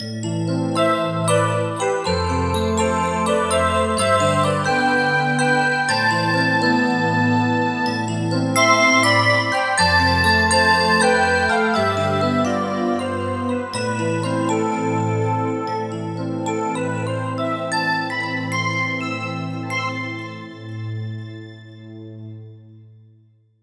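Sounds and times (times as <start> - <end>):
bell: 0.0 - 20.8.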